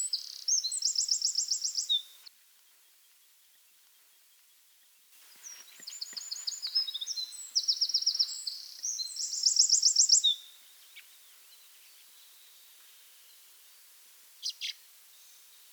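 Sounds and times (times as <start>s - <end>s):
Eurasian wren Troglodytes troglodytes singing trills: 0.0s - 2.3s, 5.4s - 11.3s.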